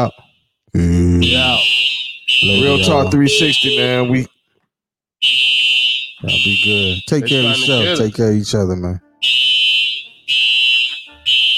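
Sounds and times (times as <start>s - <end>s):
fire alarm beeping: 0.0s - 0.6s, 1.2s - 4.5s, 5.2s - 8.1s, 9.2s - 11.5s
speech: 0.0s - 4.3s, 5.2s - 9.7s.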